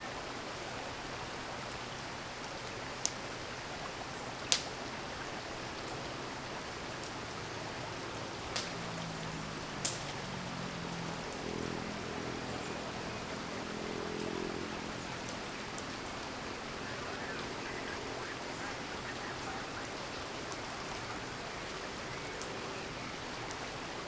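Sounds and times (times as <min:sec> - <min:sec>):
waterfall: 0:00.0 - 0:24.0
campfire crackling: 0:00.1 - 0:24.0
distant motorcycle passing: 0:05.6 - 0:24.0
walkie-talkie: 0:15.0 - 0:23.1.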